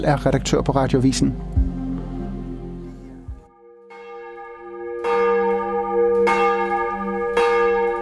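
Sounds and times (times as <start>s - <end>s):
speech: 0.0s - 1.5s
low hum: 1.3s - 3.8s
large cathedral church bells tolling for morning service: 3.5s - 8.0s.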